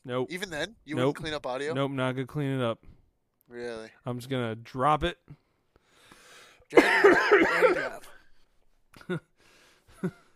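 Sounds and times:
speech: 0.0s - 2.9s, 3.5s - 5.4s, 6.7s - 8.1s, 9.0s - 9.3s, 10.0s - 10.2s
person coughing: 6.7s - 8.2s.

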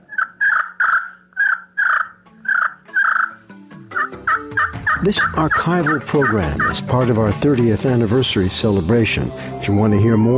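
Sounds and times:
slate turkey call yelps from a wooden striker on slate: 0.0s - 6.9s
speech: 5.0s - 10.3s.

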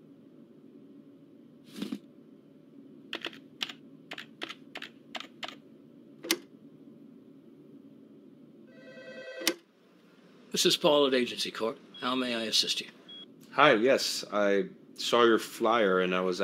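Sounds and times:
keyboard clicks: 3.1s - 5.6s
electronic telephone ring: 8.7s - 9.6s
speech: 10.6s - 13.0s, 13.6s - 16.4s.

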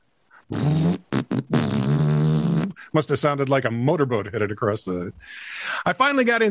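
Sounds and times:
loud buzzy farts: 0.5s - 2.8s
speech: 2.9s - 6.4s.

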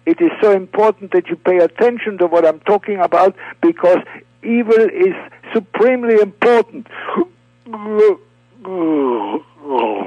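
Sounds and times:
faint steady hum: 0.0s - 10.0s
speech: 0.1s - 10.0s
person performing an exaggerated yawn mimicking a bored chimpanzee: 7.7s - 10.0s.

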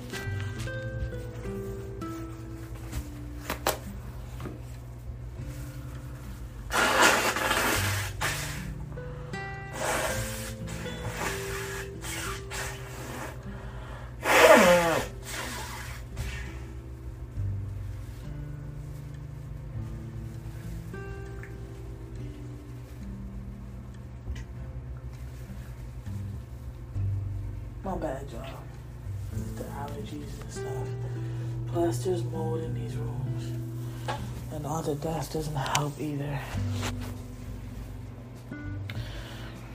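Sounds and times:
steady low mechanical hum: 0.0s - 39.7s
person blowing nose: 6.7s - 8.8s, 9.7s - 13.6s, 14.2s - 16.8s
speech: 28.0s - 28.6s, 31.8s - 37.2s.

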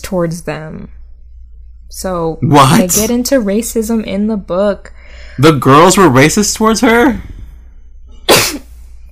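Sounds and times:
speech: 0.1s - 1.0s, 1.9s - 7.3s
person sneezing: 8.3s - 8.8s.

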